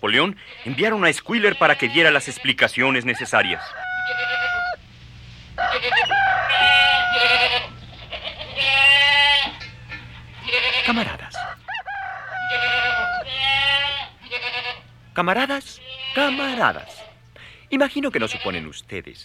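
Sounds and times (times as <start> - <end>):
speech: 0.0 - 4.2, 10.9 - 11.4, 15.2 - 17.0, 17.7 - 19.2
goats bleating: 0.1 - 4.8, 5.6 - 11.6, 12.3 - 14.9, 15.5 - 17.2, 18.0 - 18.8
farm animals grumbling and calling: 0.4 - 4.8, 5.6 - 17.2
fowl clucking and crowing: 1.7 - 4.9, 5.5 - 15.1.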